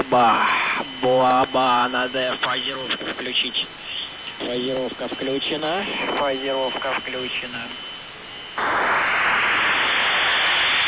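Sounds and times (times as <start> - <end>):
barrage jamming broadband white noise hiss: 0.0 - 10.8
speech: 0.1 - 3.8, 4.4 - 8.0, 8.6 - 9.1.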